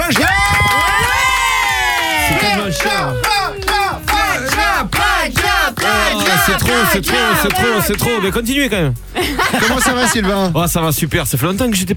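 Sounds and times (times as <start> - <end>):
loud crowd cheering and whooping: 0.0 - 8.3
laughter: 0.0 - 10.6
speech: 6.5 - 11.9.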